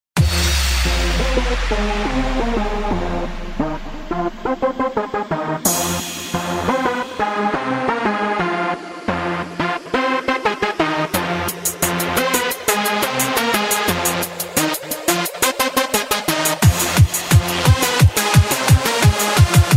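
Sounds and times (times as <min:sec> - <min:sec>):
techno music: 0:00.2 - 0:19.7.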